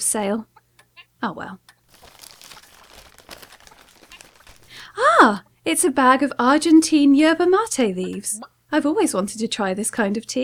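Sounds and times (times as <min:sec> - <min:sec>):
speech: 0:00.1 - 0:00.5, 0:01.2 - 0:01.8, 0:05.0 - 0:10.4
gift wrapping paper being torn and crinkled: 0:01.9 - 0:04.9.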